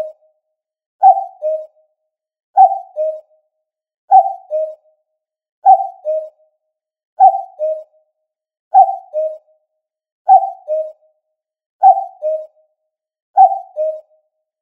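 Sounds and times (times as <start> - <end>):
common cuckoo giving falling two-note call: 1.0 - 1.8, 2.6 - 3.3, 4.1 - 4.8, 5.6 - 6.4, 7.2 - 7.9, 8.7 - 9.5, 10.3 - 11.0, 11.8 - 12.6, 13.4 - 14.2.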